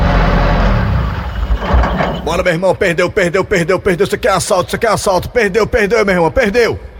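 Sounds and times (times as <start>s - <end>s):
car engine humming while driving: 0.0s - 2.5s
speech: 2.3s - 6.9s.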